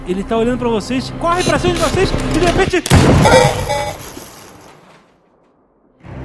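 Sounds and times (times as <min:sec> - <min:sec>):
speech: 0:00.1 - 0:04.1
loud gunshot echoing across a desert: 0:02.9 - 0:04.2.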